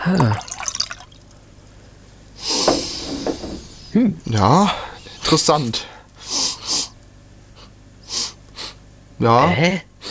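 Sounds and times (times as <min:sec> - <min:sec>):
speech: 0:00.0 - 0:00.5, 0:03.9 - 0:05.9, 0:09.2 - 0:09.9
Mosel wine pouring into a glass at a wine tasting: 0:00.2 - 0:01.4.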